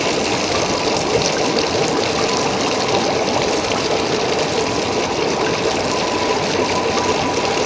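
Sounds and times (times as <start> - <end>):
onsen hot spring ambience: 0.0 - 7.6.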